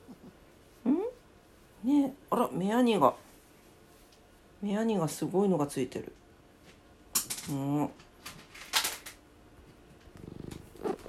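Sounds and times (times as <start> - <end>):
speech: 1.8 - 3.2, 4.6 - 6.2, 7.5 - 8.1
cat purring: 9.9 - 11.0.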